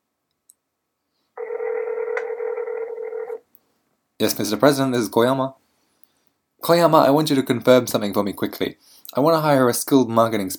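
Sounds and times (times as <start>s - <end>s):
telephone dial tone: 1.4s - 3.4s
speech: 4.2s - 5.6s, 6.6s - 10.5s.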